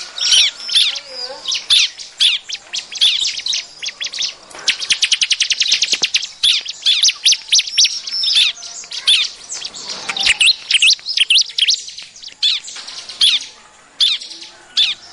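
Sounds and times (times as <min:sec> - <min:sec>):
bar-winged prinia lure calls chirping: 0:00.0 - 0:15.1.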